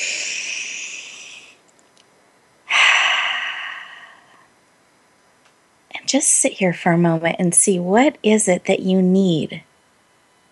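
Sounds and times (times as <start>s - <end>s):
deep breath during a guided relaxation exercise: 0.0s - 1.6s, 2.7s - 4.5s
speech: 6.1s - 9.7s.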